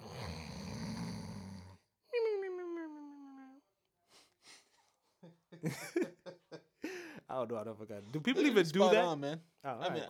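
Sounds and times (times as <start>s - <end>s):
person imitating snoring: 0.0s - 1.8s
laughter: 5.2s - 7.2s
speech: 5.6s - 6.1s, 7.3s - 10.0s.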